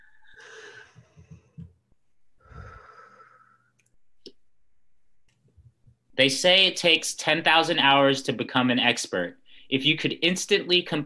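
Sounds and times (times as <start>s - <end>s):
slow breathy exhale: 0.0s - 1.1s, 2.4s - 3.7s
deep inhale: 0.0s - 1.2s, 2.4s - 3.8s
speech: 6.2s - 11.0s.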